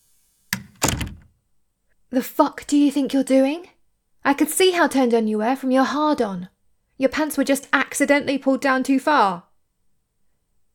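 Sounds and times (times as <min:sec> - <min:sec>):
door swinging shut into its frame: 0:00.6 - 0:01.4
speech: 0:02.1 - 0:09.5.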